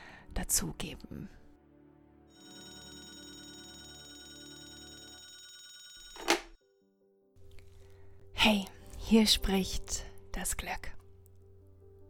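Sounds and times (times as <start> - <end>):
speech: 0.5 - 1.4, 8.4 - 11.0
telephone ringing: 2.3 - 6.6.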